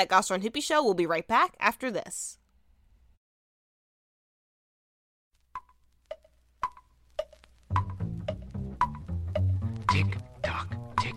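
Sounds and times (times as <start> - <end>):
speech: 0.0 - 2.4
grandfather clock ticking: 5.5 - 11.1
swinging musical accompaniment: 6.6 - 11.1.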